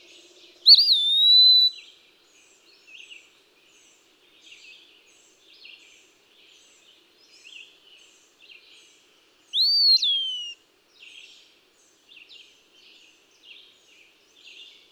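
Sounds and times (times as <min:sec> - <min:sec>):
Eastern wood-pewee giving a loud climbing then falling whistle: 0:00.7 - 0:01.8, 0:09.6 - 0:10.6
soft high bird notes: 0:09.6 - 0:10.5.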